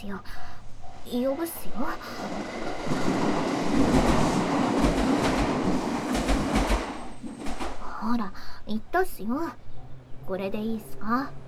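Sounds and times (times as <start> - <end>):
speech: 0.0 - 5.4, 8.0 - 9.6, 10.3 - 11.4
train rumbling past: 0.0 - 11.4
train wheels clacking over rail joints: 0.6 - 8.4.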